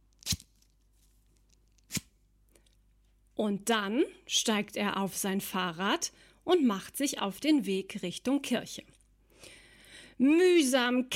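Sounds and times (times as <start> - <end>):
faint steady hum: 0.0 - 11.1
man pulling jacket zipper closed outside a door: 1.9 - 2.2
speech: 3.4 - 9.6, 10.2 - 11.1.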